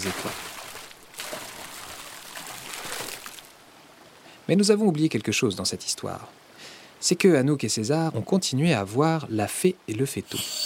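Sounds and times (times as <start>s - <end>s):
speech: 0.0s - 0.5s, 4.5s - 10.6s
family of beavers slapping tails on water of a small river branch: 0.0s - 3.6s.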